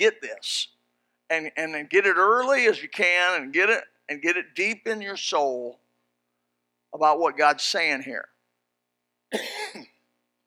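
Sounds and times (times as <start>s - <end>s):
speech: 0.0s - 0.7s, 1.3s - 5.8s, 6.9s - 8.3s, 9.3s - 9.9s
person coughing harshly: 9.3s - 10.0s.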